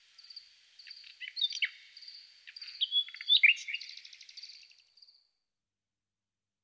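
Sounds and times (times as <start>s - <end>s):
thrush nightingale song of whistles chirps and rattles: 0.0s - 5.2s.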